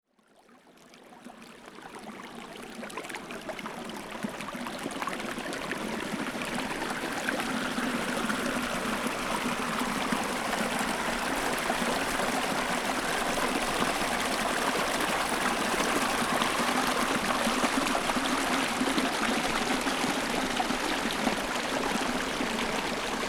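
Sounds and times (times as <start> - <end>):
stream flowing: 0.8 - 23.2.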